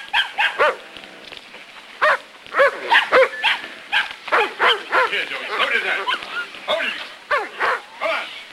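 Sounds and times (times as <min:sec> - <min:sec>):
terrier barking at a cornered puppy: 0:00.1 - 0:00.8, 0:02.0 - 0:06.2, 0:07.3 - 0:07.9.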